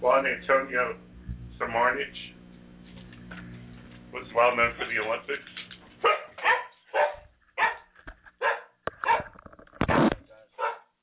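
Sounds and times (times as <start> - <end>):
speech: 0.0 - 2.4, 4.1 - 6.2
guard dog barking: 6.0 - 9.3, 10.5 - 11.0.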